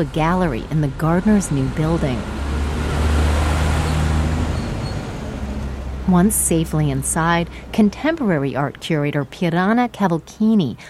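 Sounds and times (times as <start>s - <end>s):
speech: 0.0s - 2.4s, 6.1s - 10.8s
heavy flatbed truck engine rumbling while carrying a sarcophagus: 0.0s - 10.6s
street traffic noise: 0.0s - 10.8s.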